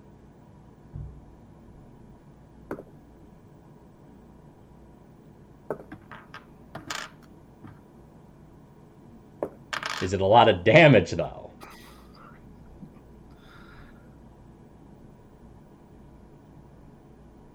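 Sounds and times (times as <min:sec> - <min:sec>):
many plastic dice rolling on a table: 0:05.7 - 0:07.8, 0:09.4 - 0:10.2
speech: 0:10.0 - 0:11.4.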